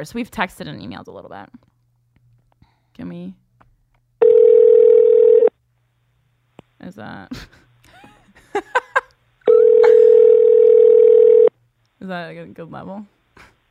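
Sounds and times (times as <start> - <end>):
speech: 0.0 - 1.7, 3.0 - 3.4, 6.8 - 7.6, 8.6 - 8.8, 12.0 - 13.2
phone ringback tones from an outgoing call: 4.2 - 5.5, 9.5 - 11.5.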